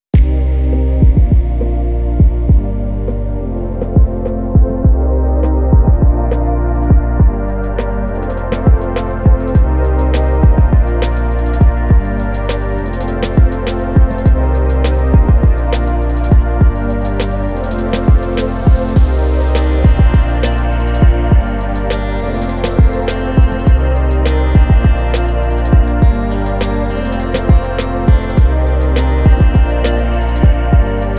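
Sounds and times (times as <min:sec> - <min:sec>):
chill trap music: 0:00.2 - 0:31.1.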